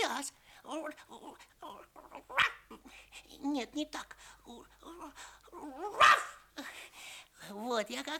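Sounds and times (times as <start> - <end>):
speech: 0.2 - 1.6, 2.2 - 6.3, 7.5 - 8.1
person imitating a young guard dog barking: 1.2 - 2.8, 4.9 - 6.4.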